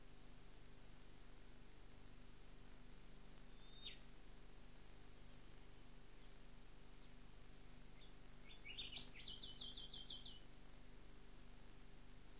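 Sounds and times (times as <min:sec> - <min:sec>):
steady low background hum: 0:00.0 - 0:12.3
rufous whistler song of sharp whistled notes: 0:03.5 - 0:04.0, 0:08.0 - 0:10.5.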